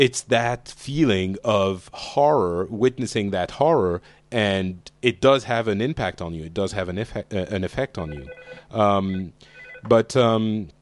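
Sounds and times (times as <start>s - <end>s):
speech: 0.0s - 10.7s
phone ringing with a buzzy tonal ringtone: 8.1s - 10.0s.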